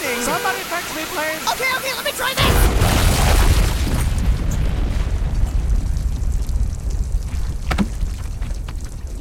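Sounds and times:
speech: 0.1 - 2.5
explosion with dense low rumbling roar: 2.4 - 9.1.

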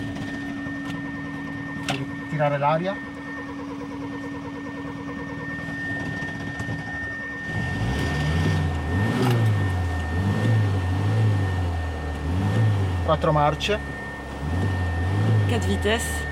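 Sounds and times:
car engine idling and revving: 0.8 - 16.3
speech: 2.3 - 3.1, 13.1 - 13.9, 15.5 - 16.2.

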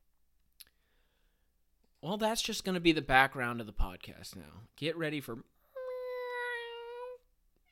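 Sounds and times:
speech: 2.0 - 5.6
cat meowing: 5.8 - 7.7.

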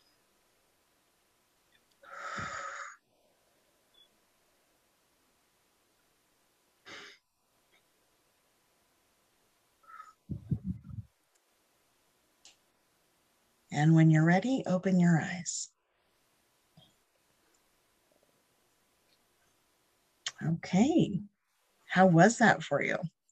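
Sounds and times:
deep cleansing breaths during a therapy session: 2.0 - 3.2
speech: 13.8 - 15.7, 20.4 - 21.3, 21.9 - 23.2.

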